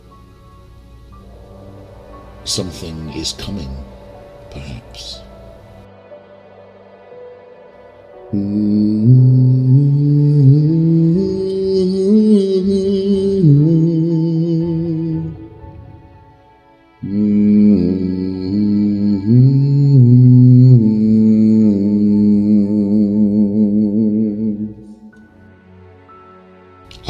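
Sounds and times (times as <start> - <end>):
voices humming in harmony: 0.0 - 27.0
speech: 2.4 - 5.3, 8.3 - 9.3.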